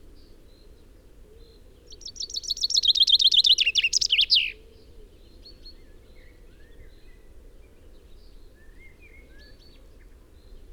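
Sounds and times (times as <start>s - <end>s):
Common chaffinch song Fringilla coelebs: 2.0s - 4.6s.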